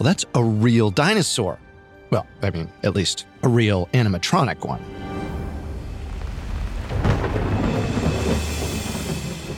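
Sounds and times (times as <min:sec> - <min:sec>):
speech: 0:00.0 - 0:05.1
deep rolling thunder rumble: 0:05.6 - 0:09.5
steady rain: 0:05.6 - 0:09.5.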